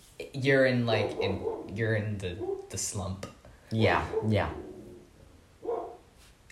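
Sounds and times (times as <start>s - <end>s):
speech: 0.3s - 4.7s
single short dog bark: 0.9s - 2.7s, 4.0s - 4.7s, 5.6s - 6.1s.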